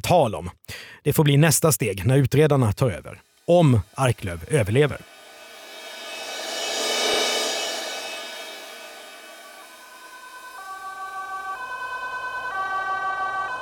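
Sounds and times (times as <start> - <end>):
speech: 0.1 - 5.1
vehicle rumbling past: 5.0 - 10.8
two-tone hi-lo ambulance siren: 9.6 - 13.6.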